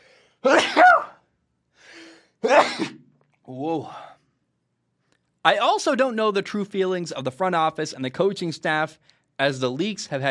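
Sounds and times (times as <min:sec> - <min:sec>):
person sneezing: 0:00.4 - 0:01.3, 0:02.4 - 0:03.1
speech: 0:05.4 - 0:10.2.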